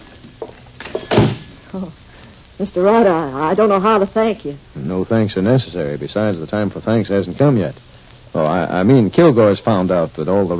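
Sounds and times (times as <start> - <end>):
door opening with a dull thunk: 0.9 - 1.4
speech: 1.7 - 2.0, 2.6 - 10.5.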